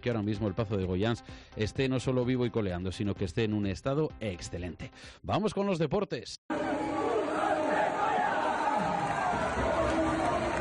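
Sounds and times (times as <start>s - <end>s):
speech: 0.0s - 6.6s
large arena crowd roaring a sustained chant: 6.5s - 10.5s.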